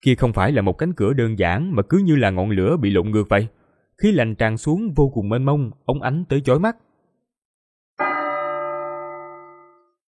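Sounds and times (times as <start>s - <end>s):
speech: 0.0s - 6.9s
melodious bell ringing: 8.0s - 10.0s.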